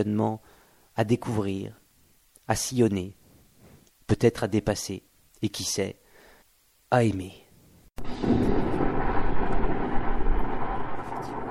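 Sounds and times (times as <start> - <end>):
speech: 0.0 - 1.8, 2.5 - 3.2, 4.1 - 6.0, 6.9 - 7.4
muffled explosion with rumbling roar: 8.0 - 11.4.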